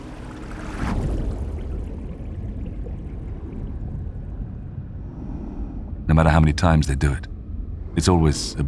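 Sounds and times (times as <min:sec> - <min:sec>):
water splashing surge: 0:00.0 - 0:04.6
water rushing and pouring as divers leave a diving bell hatch in the North Sea: 0:00.0 - 0:05.3
speech: 0:06.1 - 0:07.3, 0:08.0 - 0:08.6.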